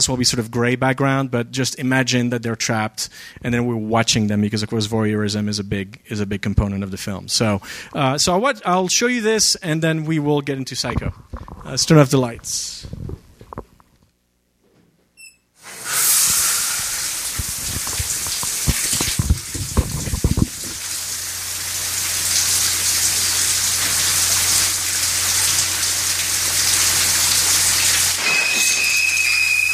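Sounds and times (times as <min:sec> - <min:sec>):
speech: 0:00.0 - 0:13.2
shower water spraying in a horror film shower scene: 0:15.6 - 0:29.7.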